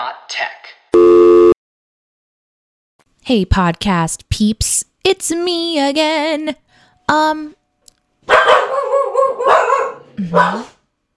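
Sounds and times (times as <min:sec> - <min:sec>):
speech: 0:00.2 - 0:00.8, 0:03.3 - 0:07.6, 0:08.2 - 0:10.7
dogs barking and yipping: 0:08.2 - 0:10.8.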